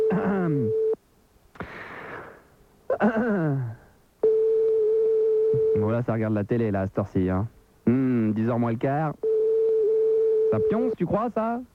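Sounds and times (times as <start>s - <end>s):
phone ringback tone of unanswered call: 0.0s - 1.0s, 4.2s - 5.9s, 9.2s - 11.0s
speech: 6.0s - 9.2s, 10.5s - 11.7s.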